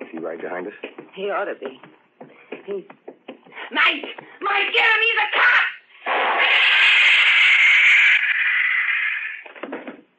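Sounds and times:
speech: 0.2 - 2.0, 2.7 - 3.0, 3.7 - 5.6
electric stun gun blast in a dark alleyway: 6.0 - 9.4.

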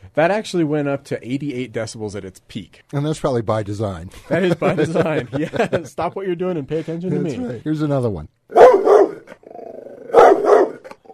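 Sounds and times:
speech: 0.2 - 8.4
laughter: 4.3 - 6.1
large dog barking: 8.5 - 9.3, 10.1 - 10.9
large dog snarling: 8.5 - 11.1
large dog growling: 9.1 - 11.1.

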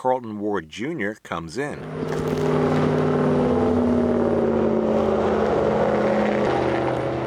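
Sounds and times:
speech: 0.0 - 2.9
highway traffic roaring overhead: 1.8 - 7.2.

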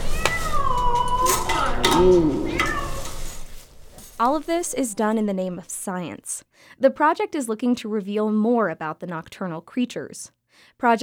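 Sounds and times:
distressed trapped cat meowing and yowling: 0.0 - 3.2
speech: 2.0 - 2.4, 4.2 - 11.0.

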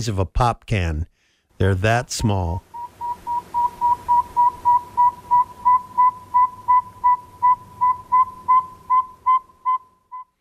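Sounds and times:
speech: 0.0 - 2.7
male saw-whet owl giving whistled mating toots: 2.8 - 10.3.

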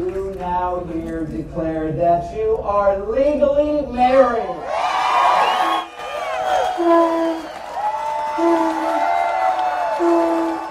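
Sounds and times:
speech: 0.5 - 4.7, 6.8 - 7.1
wedding guests cheering and whooping: 4.6 - 10.6
steady low horn-like tone in short blasts: 6.6 - 7.6, 8.4 - 9.0, 9.9 - 10.6.

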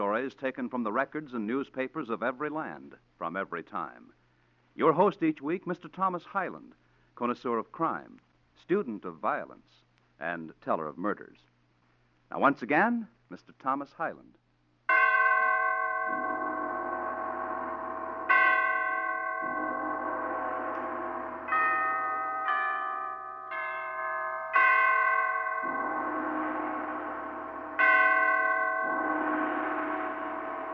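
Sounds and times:
speech: 0.0 - 4.2, 4.8 - 11.5, 12.3 - 14.4
large church bells tolling a requiem: 14.9 - 30.7.

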